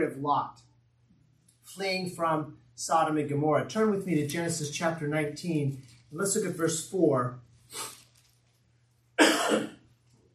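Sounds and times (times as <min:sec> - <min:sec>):
speech: 0:00.0 - 0:00.7, 0:01.7 - 0:07.9
faint steady hum: 0:00.0 - 0:10.3
man coughing: 0:09.2 - 0:09.8.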